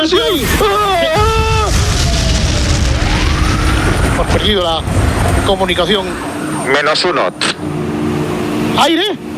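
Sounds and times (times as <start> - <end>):
bomb explosion aboard a bus: 0.2 - 6.4
speech: 4.4 - 7.8, 8.8 - 9.3.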